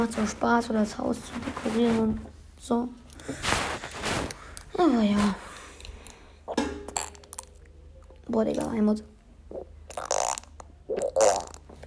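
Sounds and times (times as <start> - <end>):
speech: 0.0 - 3.7, 4.8 - 5.5, 8.3 - 9.7
person imitating farting with mouth: 6.5 - 7.6, 9.5 - 11.8.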